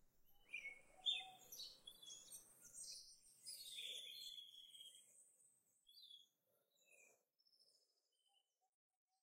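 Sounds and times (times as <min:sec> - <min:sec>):
bird chirps and tweets: 0:00.4 - 0:08.6.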